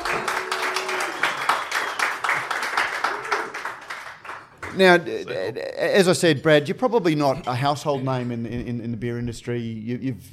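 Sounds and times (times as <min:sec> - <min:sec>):
crowd applauding to welcome a guest: 0:00.0 - 0:05.0
speech: 0:04.8 - 0:10.3.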